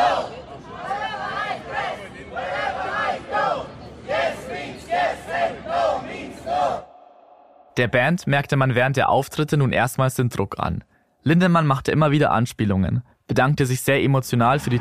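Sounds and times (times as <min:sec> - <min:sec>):
dense murmur of crowd voices: 0:00.0 - 0:07.0
crowd of counter-demonstrators in Munich chanting in unison: 0:00.0 - 0:07.8, 0:14.6 - 0:14.7
speech: 0:07.8 - 0:14.7.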